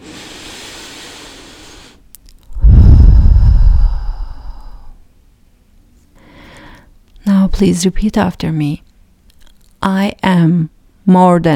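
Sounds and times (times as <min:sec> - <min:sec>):
deep breath during a guided breathing exercise: 0:00.0 - 0:02.0, 0:02.6 - 0:05.0, 0:06.2 - 0:06.9
speech: 0:07.6 - 0:08.9, 0:09.8 - 0:11.5.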